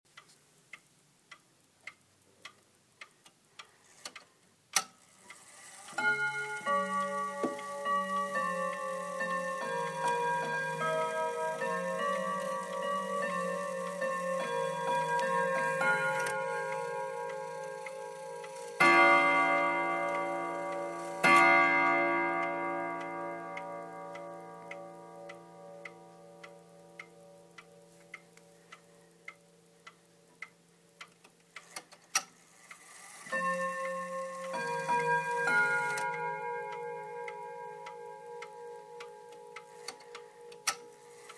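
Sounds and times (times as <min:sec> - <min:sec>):
chime melody: 0:06.0 - 0:25.9, 0:33.3 - 0:41.1.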